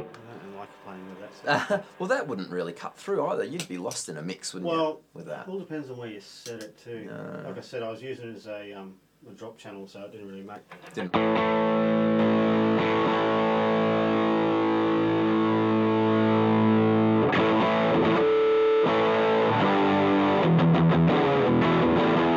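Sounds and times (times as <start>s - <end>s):
distorted electric guitar playing chords and riffs: 0.0s - 2.9s, 10.8s - 22.3s
speech: 0.6s - 12.1s.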